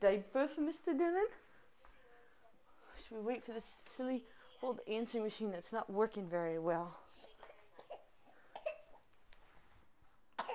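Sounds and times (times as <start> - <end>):
speech: 0.0 - 1.5, 3.0 - 7.0
small child coughing: 7.8 - 9.0, 10.4 - 10.5.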